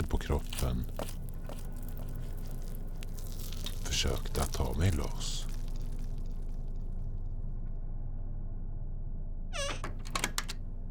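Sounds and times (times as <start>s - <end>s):
steady low hum: 0.0s - 10.8s
speech: 4.0s - 5.5s
house door carefully opened, creaking with a short high squeak: 9.5s - 10.6s.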